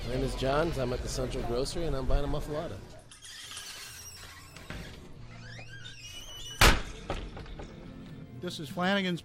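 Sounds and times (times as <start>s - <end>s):
speech: 0.2s - 3.0s, 8.4s - 9.2s
pub men's room door swinging shut with a thud: 6.5s - 7.6s.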